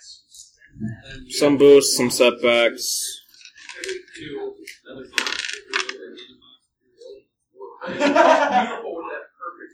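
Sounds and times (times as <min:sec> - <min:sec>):
speech: 0:00.8 - 0:03.2, 0:03.8 - 0:05.4, 0:07.9 - 0:08.8
dice clattering as they are scooped up for a game: 0:03.2 - 0:06.3
laughter: 0:07.8 - 0:09.0.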